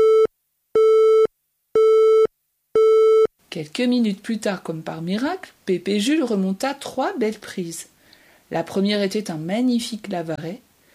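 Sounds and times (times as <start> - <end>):
telephone busy tone after a call cuts off: 0.0 - 3.3
speech: 3.6 - 7.9, 8.5 - 10.7.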